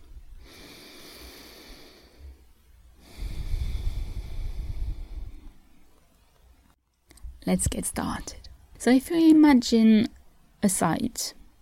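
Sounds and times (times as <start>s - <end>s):
deep breath: 0.4s - 5.8s
speech: 7.5s - 11.4s.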